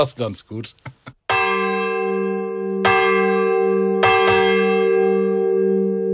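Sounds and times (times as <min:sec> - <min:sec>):
speech: 0:00.0 - 0:01.1
church bell tolling with long humming resonance: 0:01.3 - 0:06.1.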